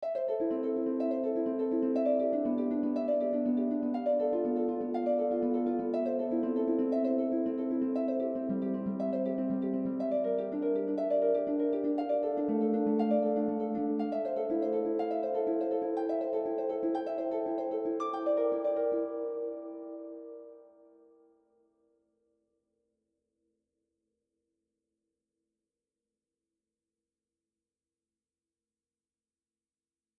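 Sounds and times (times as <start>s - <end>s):
harp playing an inversion: 0.0s - 21.0s.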